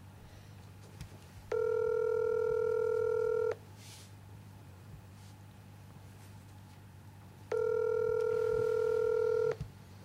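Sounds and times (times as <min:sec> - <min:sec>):
steady telephone tone: 0:01.5 - 0:03.6, 0:07.5 - 0:09.6.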